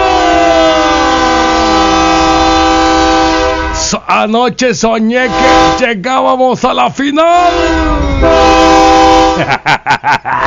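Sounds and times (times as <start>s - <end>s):
train whistle: 0.0s - 3.9s, 5.3s - 5.8s, 7.5s - 9.5s
speech: 4.1s - 8.7s, 9.4s - 10.4s
laughter: 9.2s - 10.4s.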